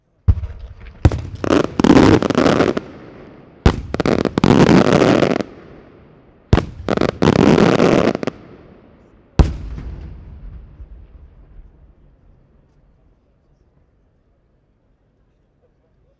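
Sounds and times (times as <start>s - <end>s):
strong fireworks blast in Malta: 0.3s - 13.0s.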